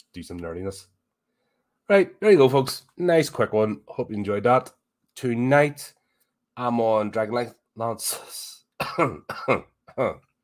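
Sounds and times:
speech: 0.2s - 1.0s, 1.9s - 6.0s, 6.6s - 10.3s
person coughing and clearing their throat: 8.8s - 10.4s.

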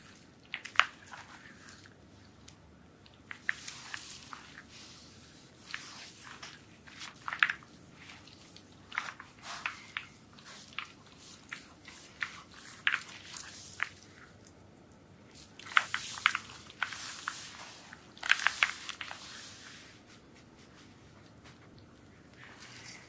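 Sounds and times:
ASMR soap massage sounds: 0.0s - 14.6s, 15.3s - 23.0s.

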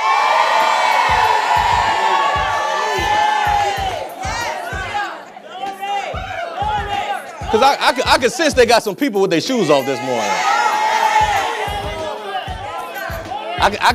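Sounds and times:
church audience cheering and shouting: 0.0s - 13.9s
speech: 7.5s - 10.5s, 13.6s - 13.9s.

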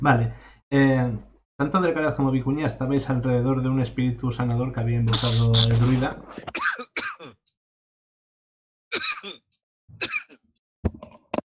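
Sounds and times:
speech: 0.0s - 7.4s, 8.9s - 11.0s
person clearing throat: 5.2s - 7.4s, 9.0s - 9.4s, 10.0s - 10.4s
person coughing: 5.3s - 7.4s, 9.0s - 9.4s, 10.0s - 10.4s.

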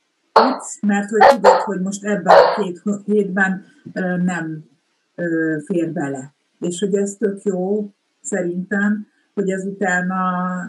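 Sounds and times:
speech: 0.4s - 10.6s
dog barking: 1.2s - 2.7s.

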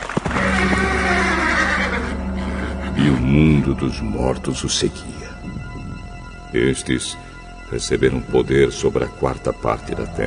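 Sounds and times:
steady low rumble: 0.0s - 9.6s
horse neighing: 0.3s - 2.9s
speech: 3.0s - 5.7s, 6.5s - 10.2s.

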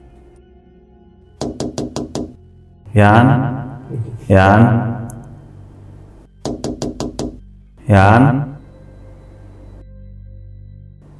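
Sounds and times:
sharp knocks on a window: 1.4s - 2.4s, 6.4s - 7.4s
low murky droning: 2.4s - 6.4s, 7.4s - 11.1s
speech: 3.0s - 4.9s, 7.9s - 8.5s.

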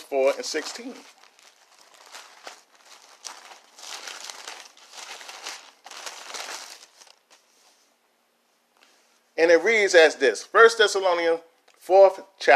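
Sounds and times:
thin Bible paper pages rustling and crinkling: 0.0s - 7.8s
speech: 0.1s - 1.2s, 9.4s - 12.5s.

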